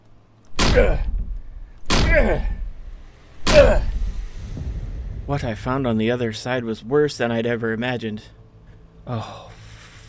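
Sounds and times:
person ramming a door with their body: 0.5 - 4.8
speech: 0.8 - 1.1, 2.1 - 2.6, 5.3 - 8.4, 9.0 - 9.5.

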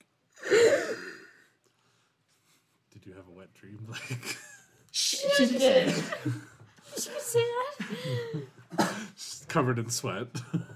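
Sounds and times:
person gasping for air on waking: 0.4 - 1.5
speech: 3.1 - 8.4, 9.5 - 10.7
laughter: 3.9 - 8.7.

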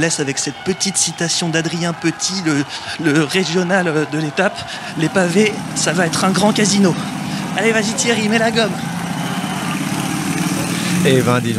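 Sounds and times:
speech: 0.0 - 9.0, 11.0 - 11.5
laughter: 0.0 - 11.5
motorcycle engine revving: 4.8 - 11.5.

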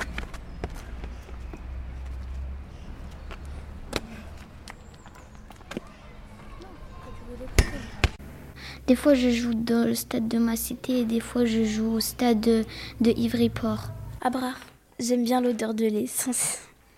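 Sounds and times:
running footsteps outdoors: 0.0 - 6.7
speech: 8.9 - 16.7.

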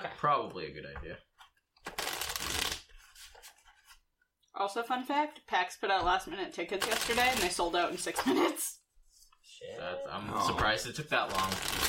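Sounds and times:
speech: 0.2 - 1.4, 4.6 - 8.8, 9.5 - 11.8
softer rustling and handling of the cards: 1.4 - 4.0, 6.8 - 8.2, 11.0 - 11.8
deck of playing cards riffle shuffled: 1.8 - 4.0, 11.3 - 11.8.

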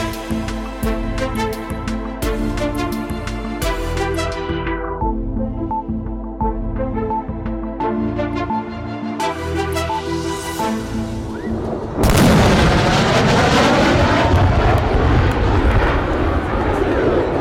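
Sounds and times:
soft tonal music: 0.0 - 12.0
F-16 fighter jet roar: 10.6 - 17.3
F-16 fighter jet breaking the sound barrier: 11.3 - 16.8.

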